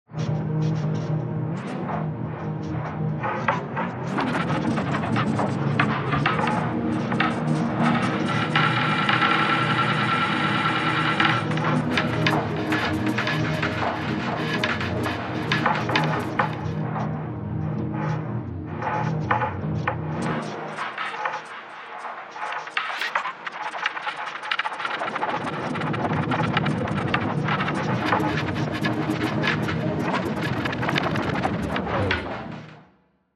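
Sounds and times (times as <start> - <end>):
granular synthesis soundscape: 0.2 - 32.7.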